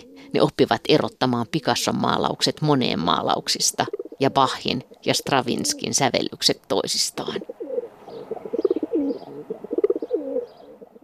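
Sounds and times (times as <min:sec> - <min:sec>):
feral pigeons cooing: 0:00.0 - 0:00.5, 0:03.2 - 0:04.6, 0:05.3 - 0:06.0, 0:07.3 - 0:11.0
speech: 0:00.3 - 0:07.5.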